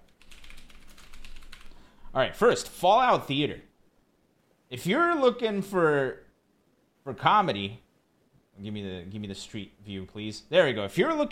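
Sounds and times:
rapid typing on a computer keyboard: 0.0s - 1.8s
faint low hum: 0.0s - 11.2s
speech: 2.1s - 3.7s, 4.7s - 6.2s, 7.0s - 7.8s, 8.6s - 11.2s.

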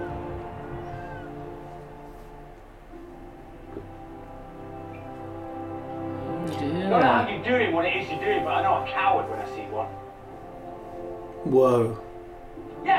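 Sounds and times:
cat yowling and caterwauling: 0.0s - 1.6s
steady low humming drone: 0.0s - 12.8s
speech: 6.9s - 10.0s, 11.5s - 12.0s.

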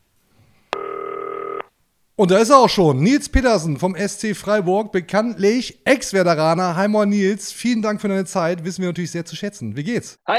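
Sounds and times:
electronic telephone ring tone: 0.7s - 1.7s
speech: 2.2s - 10.3s.

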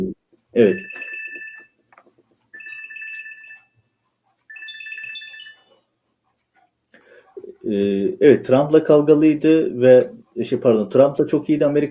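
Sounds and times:
speech: 0.6s - 1.1s, 7.7s - 11.8s
telephone with bright warbling electronic ringtone: 0.6s - 1.9s, 2.5s - 3.9s, 4.5s - 5.9s.

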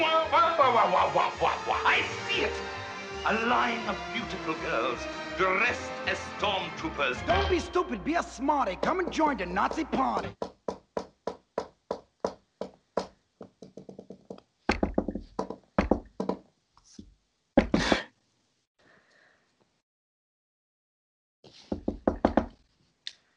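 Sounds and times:
speech: 0.6s - 10.5s
knocking on an office door: 8.8s - 16.4s, 21.7s - 22.6s.

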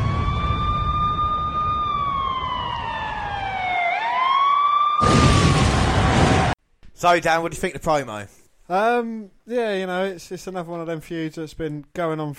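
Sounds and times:
loud ambulance siren wailing: 0.0s - 6.6s
speech: 7.0s - 12.3s.

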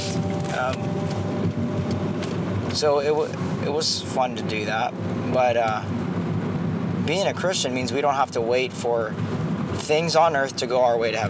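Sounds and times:
motorcycle engine revving and passing: 0.0s - 7.1s
road noise from inside a moving vehicle: 0.0s - 11.2s
speech: 0.6s - 1.2s, 2.8s - 6.0s, 7.1s - 11.2s.

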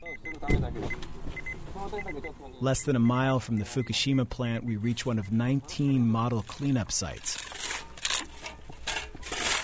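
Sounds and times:
speech: 0.5s - 1.1s, 1.9s - 7.7s
crunching and rustling of dirt and plastic bags: 6.1s - 9.6s
contractors' shovels scraping and dumping dirt into thick plastic bags at a cleanup site: 6.2s - 9.6s.

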